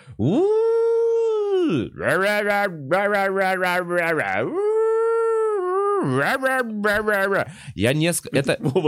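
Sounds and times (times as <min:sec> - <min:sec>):
person imitating a wailing alarm siren with their voice: 0:00.1 - 0:06.6
speech: 0:00.2 - 0:00.6, 0:01.7 - 0:04.6, 0:06.0 - 0:08.8.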